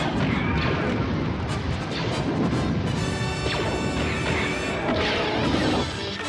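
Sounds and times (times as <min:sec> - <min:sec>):
science-fiction blaster fire zapping: 0:00.0 - 0:06.2.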